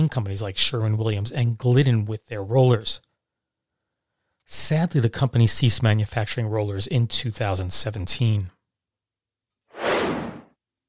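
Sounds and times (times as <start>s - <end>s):
speech: 0.0s - 3.1s, 4.5s - 8.6s
airy whoosh sound effect: 9.8s - 10.5s.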